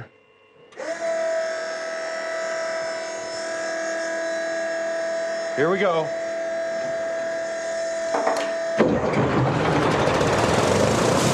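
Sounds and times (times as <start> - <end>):
steady mechanical whine: 0.0 - 11.3
speech: 5.6 - 6.2
mail-order tank engine roaring into life: 8.8 - 11.3.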